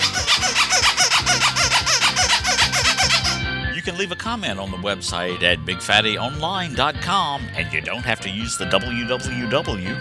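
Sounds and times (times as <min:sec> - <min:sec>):
rubber duck toy squeaking: 0:00.0 - 0:03.5
speech: 0:03.9 - 0:10.0.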